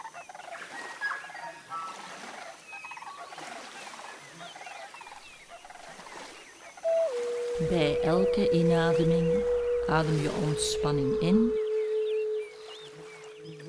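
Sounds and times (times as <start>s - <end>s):
chorus of birds whistling and chirping: 6.9s - 13.6s
speech: 7.6s - 11.6s.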